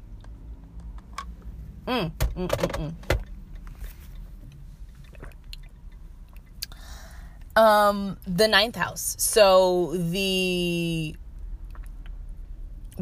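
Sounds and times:
speech: 0:01.8 - 0:03.1, 0:07.6 - 0:11.2
person sipping and swallowing water: 0:04.9 - 0:07.5.

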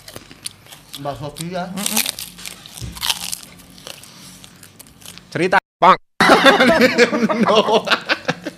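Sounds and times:
person biting and crunching krupuk crackers: 0:00.0 - 0:05.4
speech: 0:01.0 - 0:02.2, 0:05.3 - 0:08.1
laughter: 0:06.2 - 0:08.5.

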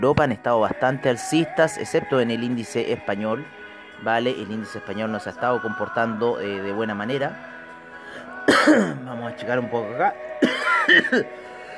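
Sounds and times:
speech: 0:00.0 - 0:07.6, 0:08.6 - 0:11.4
harsh raspy throaty coughing: 0:08.5 - 0:09.0, 0:10.4 - 0:11.4.

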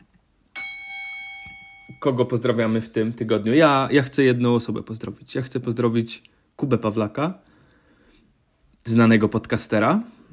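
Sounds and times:
bell struck with bright metallic tone: 0:00.6 - 0:02.4
speech: 0:01.9 - 0:07.5, 0:08.8 - 0:10.2.

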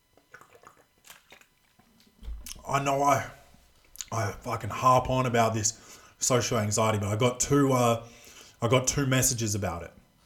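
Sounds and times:
sipping a drink: 0:00.2 - 0:02.7
speech: 0:02.7 - 0:03.4, 0:04.1 - 0:10.0.

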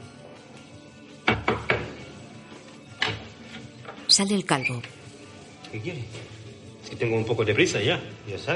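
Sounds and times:
knocking on a door: 0:01.2 - 0:02.0
speech: 0:04.2 - 0:05.0, 0:05.7 - 0:08.5.

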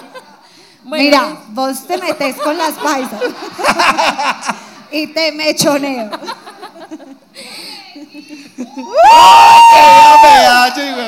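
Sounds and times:
speech: 0:00.8 - 0:06.4, 0:08.8 - 0:11.0
laughter: 0:01.9 - 0:05.1, 0:06.0 - 0:09.2
crowd cheering and applause sound effect: 0:08.8 - 0:11.0.

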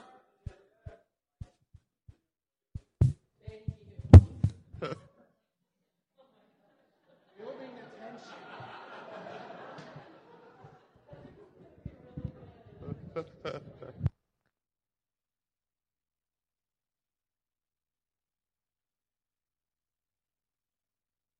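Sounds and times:
soft low heartbeat thumping: 0:02.8 - 0:04.9, 0:11.8 - 0:14.1
louder sharper knocks: 0:04.1 - 0:04.7
laughter: 0:06.2 - 0:14.1
voices: 0:11.1 - 0:14.1.

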